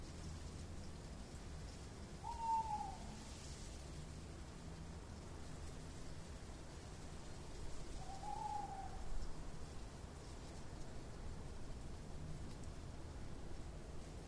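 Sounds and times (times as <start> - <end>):
steady background noise: 0.0 - 14.2
owl giving a clear whistled hoot: 2.2 - 3.2, 8.0 - 9.0.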